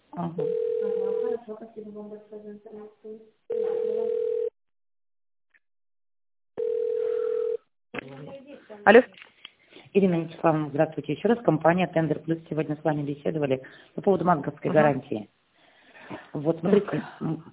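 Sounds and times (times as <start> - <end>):
speech: 0.2 - 4.4, 8.0 - 9.3, 9.9 - 15.4, 16.1 - 17.5
telephone ringing tone while a business call is transferred: 0.4 - 1.4, 3.5 - 4.5, 6.6 - 7.6.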